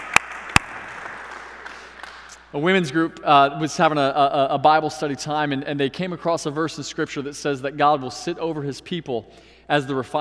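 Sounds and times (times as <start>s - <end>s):
sharp hand claps: 0.0s - 2.5s
steady hum: 0.0s - 10.1s
speech: 2.5s - 10.1s.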